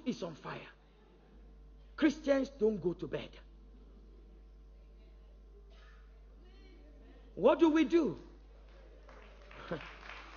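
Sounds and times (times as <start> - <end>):
speech: 0.1 - 0.8, 2.0 - 3.5, 7.4 - 8.3, 9.7 - 9.9
audience clapping hands: 8.4 - 10.3.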